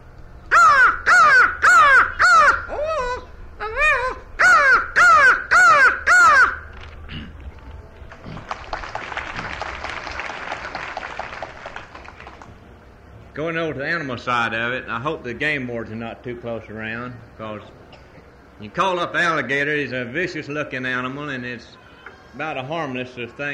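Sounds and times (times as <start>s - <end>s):
crow cawing: 0.5s - 2.7s, 4.4s - 6.6s
applause-like noise: 8.1s - 12.6s
speech: 13.7s - 17.8s, 18.6s - 23.5s.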